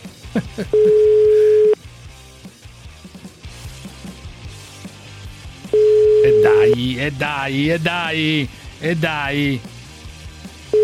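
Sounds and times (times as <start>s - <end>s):
music with a thumping bass line: 0.0s - 0.7s, 1.8s - 10.7s
laughter: 0.2s - 1.0s
speech: 0.4s - 1.4s, 6.4s - 9.7s
telephone busy tone after dropped call: 0.8s - 1.8s, 5.8s - 6.8s.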